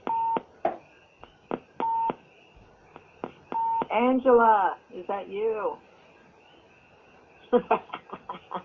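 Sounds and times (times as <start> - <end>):
telephone low-battery electronic beeps: 0.0 - 0.5, 1.2 - 4.1
speech: 3.9 - 5.9, 7.5 - 8.0
laughter: 7.5 - 8.6.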